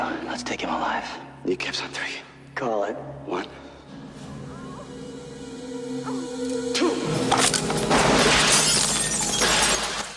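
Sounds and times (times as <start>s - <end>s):
steady low drone: 0.0s - 8.4s
speech: 0.4s - 3.6s
glass shattering as a body falls through it: 7.3s - 10.1s.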